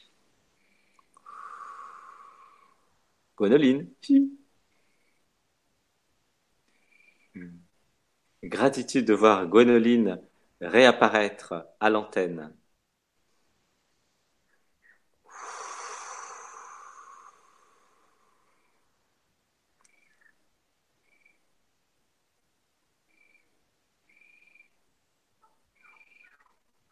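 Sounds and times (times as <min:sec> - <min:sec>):
chorus of frogs croaking at a pond: 0:00.6 - 0:02.9, 0:06.8 - 0:07.4, 0:14.5 - 0:18.9, 0:19.8 - 0:21.6, 0:23.0 - 0:26.6
speech: 0:03.4 - 0:04.4, 0:08.4 - 0:12.6.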